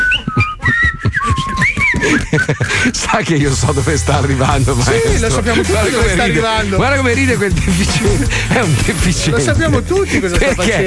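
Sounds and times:
person whistling a short wavering tune: 0:00.0 - 0:02.8
laughter: 0:00.1 - 0:10.8
speech: 0:02.3 - 0:10.8.

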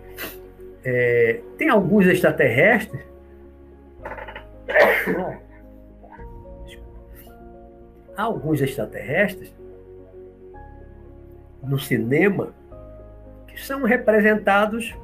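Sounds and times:
speech: 0:00.8 - 0:03.1, 0:08.2 - 0:09.6, 0:11.6 - 0:12.6, 0:13.6 - 0:15.0
person sneezing: 0:04.7 - 0:05.4.

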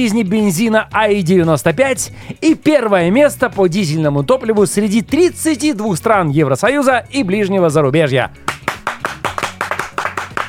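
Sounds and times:
speech: 0:00.0 - 0:08.4
audience clapping rhythmically: 0:08.5 - 0:10.4.

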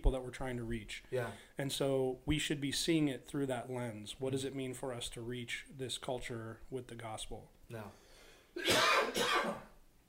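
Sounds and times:
speech: 0:00.0 - 0:08.0
harsh raspy coughs: 0:08.6 - 0:09.8.

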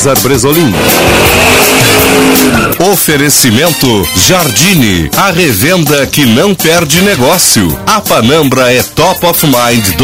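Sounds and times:
speech: 0:00.0 - 0:10.0
racing-car engine roaring and whining: 0:00.4 - 0:03.0
screeching tire squeal: 0:00.5 - 0:03.0.

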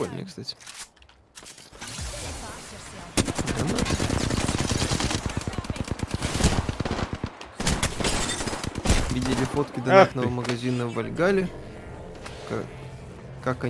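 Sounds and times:
speech: 0:00.0 - 0:01.6, 0:09.2 - 0:11.7, 0:12.5 - 0:12.8, 0:13.4 - 0:13.6
video game gunfire: 0:01.9 - 0:09.7.

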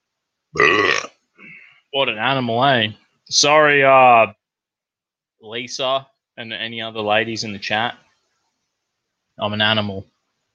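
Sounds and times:
loud croaky burp: 0:00.6 - 0:01.6
speech: 0:01.9 - 0:04.4, 0:05.4 - 0:08.0, 0:09.4 - 0:10.1.

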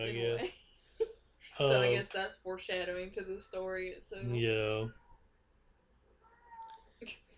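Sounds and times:
speech: 0:00.0 - 0:00.6, 0:01.6 - 0:05.0, 0:07.0 - 0:07.2
male house cat yowling: 0:06.2 - 0:06.8.

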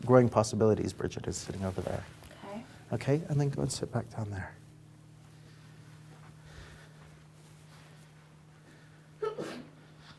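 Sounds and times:
steady low hum in a quiet room: 0:00.0 - 0:10.1
speech: 0:00.1 - 0:02.3, 0:02.9 - 0:04.6
sneeze: 0:09.2 - 0:09.8.

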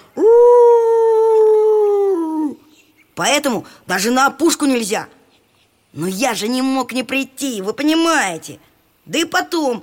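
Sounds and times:
wolf howling: 0:00.2 - 0:02.6
speech: 0:03.2 - 0:05.2, 0:06.0 - 0:09.8.

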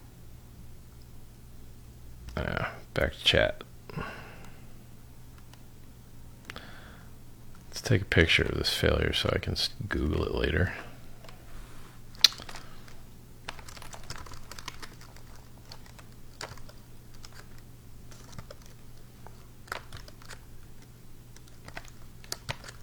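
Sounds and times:
steady low hum: 0:00.0 - 0:22.8
speech: 0:02.4 - 0:04.2, 0:07.9 - 0:10.9
typing on a computer keyboard: 0:12.2 - 0:22.8.

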